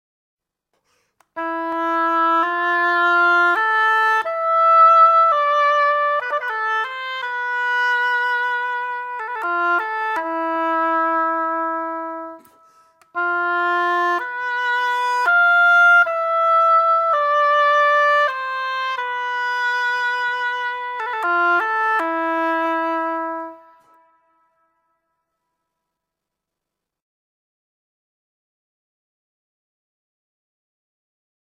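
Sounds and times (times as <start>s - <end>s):
oboe: 1.2s - 24.8s.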